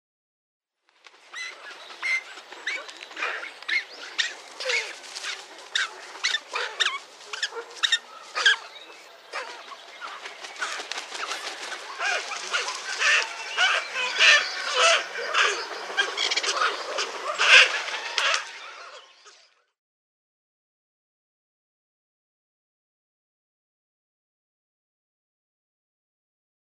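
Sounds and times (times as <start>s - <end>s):
Sacred Ibis colony calling: 1.2s - 19.5s.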